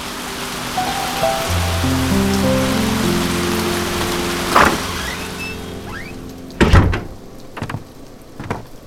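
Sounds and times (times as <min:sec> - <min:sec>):
steady rain: 0:00.0 - 0:08.8
badly fitting old wooden door of a coffee shop creaking open: 0:03.9 - 0:08.8
heavy knocks and clunks: 0:06.6 - 0:08.8.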